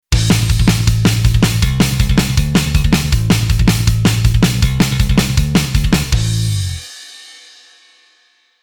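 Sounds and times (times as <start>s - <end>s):
metal bass: 0.1s - 6.9s.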